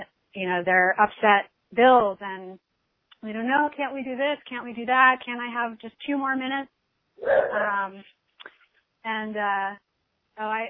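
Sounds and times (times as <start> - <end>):
speech: 0.4 - 2.6, 3.2 - 9.8, 10.4 - 10.6
dog whining: 7.2 - 7.7.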